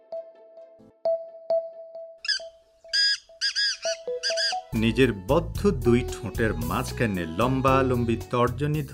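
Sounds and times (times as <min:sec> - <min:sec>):
bird squawking: 0:02.2 - 0:04.8
speech: 0:04.8 - 0:08.9.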